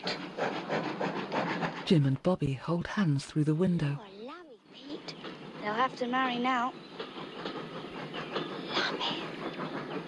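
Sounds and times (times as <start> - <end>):
steam train pulling away hissing steam: 0.0 - 2.2, 4.8 - 10.0
steam train pulling away chuffing: 0.0 - 10.0
speech: 1.9 - 4.1, 5.7 - 6.9.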